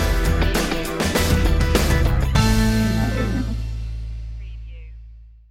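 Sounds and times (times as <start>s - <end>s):
funk punch stinger: 0.1s - 4.0s.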